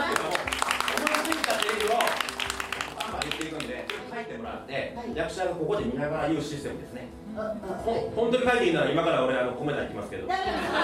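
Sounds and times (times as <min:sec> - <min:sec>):
crowd clapping: 0:00.0 - 0:04.2
speech: 0:05.2 - 0:10.8.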